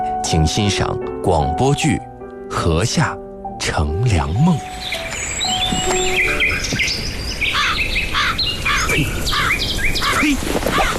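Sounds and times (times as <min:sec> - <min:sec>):
speech: 0:00.3 - 0:05.0, 0:05.7 - 0:06.8
birds chirping outdoors: 0:04.0 - 0:10.9
crow cawing: 0:07.5 - 0:10.9.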